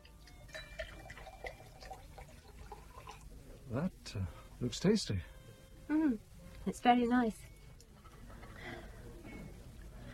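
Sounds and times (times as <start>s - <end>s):
water poured into a glass: 0.3s - 3.3s
faint tonal clinks of a glass: 0.5s - 1.8s
speech: 3.7s - 5.3s, 5.9s - 7.5s.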